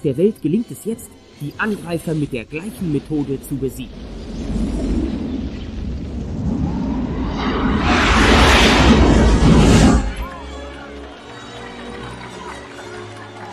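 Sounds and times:
speech: 0:00.0 - 0:04.3
alien mothership exploding in a film scene: 0:02.8 - 0:10.7.

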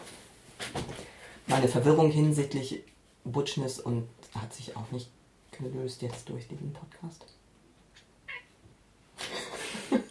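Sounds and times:
speech: 0:01.6 - 0:07.4
cat meowing and chirping: 0:08.3 - 0:08.6.

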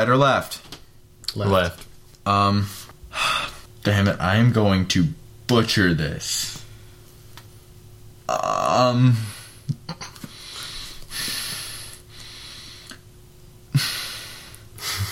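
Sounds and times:
speech: 0:00.0 - 0:00.6, 0:01.3 - 0:02.9, 0:03.8 - 0:06.6, 0:08.3 - 0:10.0
person breathing heavily: 0:03.1 - 0:03.7, 0:09.1 - 0:13.0, 0:13.7 - 0:15.1.

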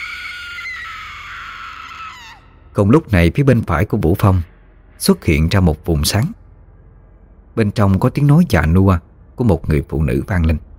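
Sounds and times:
girl screaming piercingly while clutching her head: 0:00.0 - 0:02.5
speech: 0:02.8 - 0:06.4, 0:07.6 - 0:10.7.

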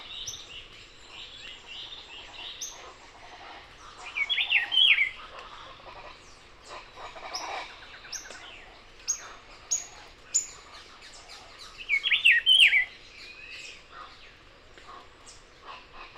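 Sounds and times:
other birds chirping: 0:00.0 - 0:16.1.

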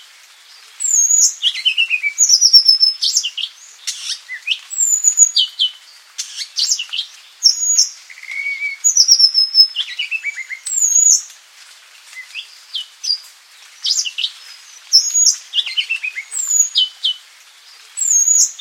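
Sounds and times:
Madagascar Magpie-robin singing: 0:00.8 - 0:05.7, 0:06.2 - 0:11.2, 0:14.9 - 0:17.0, 0:18.0 - 0:18.5.

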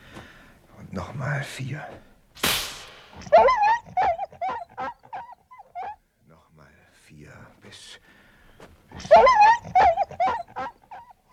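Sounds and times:
speech: 0:00.9 - 0:02.1, 0:03.2 - 0:03.7
dog howling: 0:03.2 - 0:06.0, 0:09.0 - 0:11.1.

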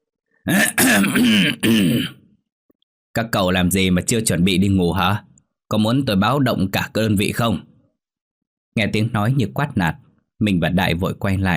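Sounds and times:
speech: 0:00.4 - 0:02.2, 0:03.2 - 0:07.7, 0:08.8 - 0:11.5
person clearing throat at night outside a building within a military unit: 0:00.5 - 0:02.3.

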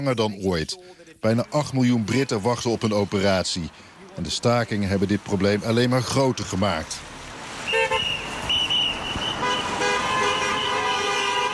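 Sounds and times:
speech: 0:00.0 - 0:07.2
traffic noise in London: 0:00.0 - 0:11.5
car horns honking from drivers passing striking doctors in London: 0:07.6 - 0:11.5.

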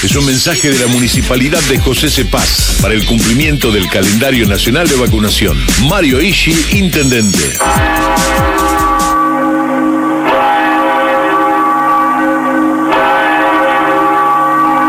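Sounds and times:
speech: 0:00.0 - 0:09.2
church bells ringing at a parish church in Tucumán: 0:07.6 - 0:14.8.

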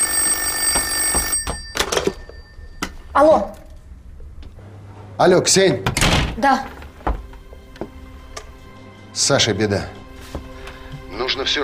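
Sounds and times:
home telephone ringing with a bright electronic tone: 0:00.0 - 0:03.2
speech: 0:03.2 - 0:03.6, 0:05.2 - 0:06.8, 0:09.3 - 0:10.0, 0:11.4 - 0:11.6.

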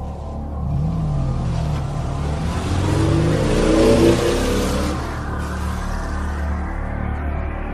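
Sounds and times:
car engine starting up and revving as the car drives off: 0:00.1 - 0:07.5.

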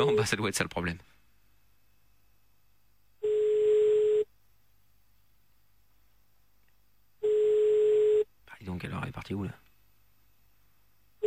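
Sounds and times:
speech: 0:00.2 - 0:01.1, 0:08.8 - 0:09.7
telephone ringback tone while placing a call: 0:03.2 - 0:04.3, 0:07.2 - 0:08.3.

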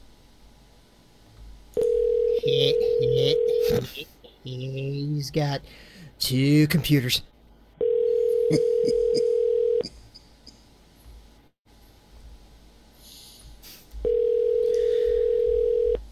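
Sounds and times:
telephone dial tone during a prank call: 0:01.8 - 0:03.6, 0:07.8 - 0:09.8, 0:14.1 - 0:16.0
speech: 0:02.4 - 0:07.3, 0:08.5 - 0:09.0.

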